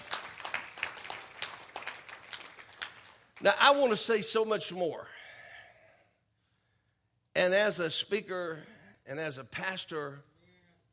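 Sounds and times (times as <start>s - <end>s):
church audience clapping in a morning service: 0.0s - 3.8s
speech: 3.4s - 5.2s, 7.4s - 10.3s.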